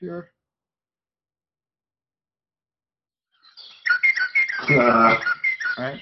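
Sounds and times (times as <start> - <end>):
speech: 0.0 - 0.4, 4.7 - 6.0
northern mockingbird song played from a phone speaker: 3.3 - 6.0.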